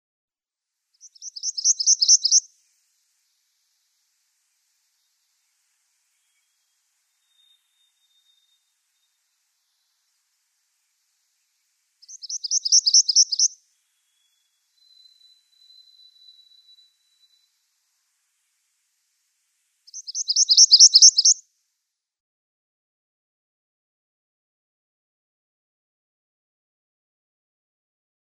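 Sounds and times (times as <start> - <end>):
Palm Warbler song: 0.9 - 21.4.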